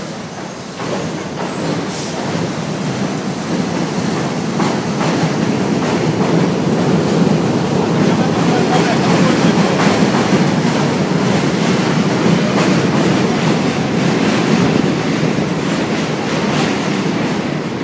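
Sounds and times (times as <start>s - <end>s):
train passing on elevated subway tracks overhead: 0.0s - 17.8s
faint voices: 7.6s - 10.5s.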